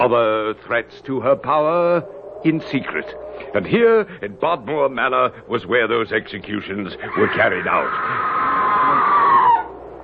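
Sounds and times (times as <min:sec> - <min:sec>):
speech: 0:00.0 - 0:08.4
woman screaming: 0:07.8 - 0:09.7.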